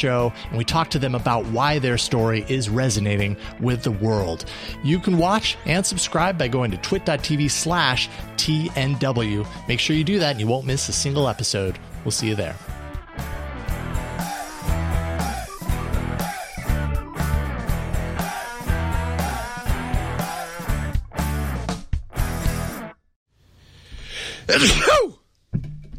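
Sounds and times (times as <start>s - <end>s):
speech: 0.0s - 12.8s
upbeat music: 0.0s - 23.0s
sneeze: 24.5s - 25.2s.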